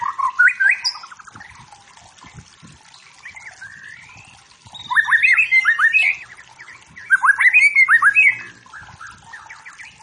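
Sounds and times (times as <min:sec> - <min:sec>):
soft bird chatter: 0:00.0 - 0:10.0
wild forest white-rumped shama singing energetically: 0:03.5 - 0:10.0.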